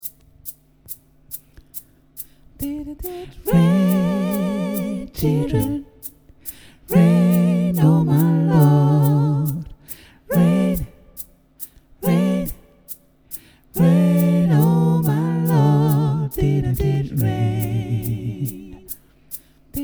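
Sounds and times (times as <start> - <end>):
gospel bass: 2.6 - 6.0, 6.6 - 11.2, 12.0 - 12.7, 13.8 - 19.0.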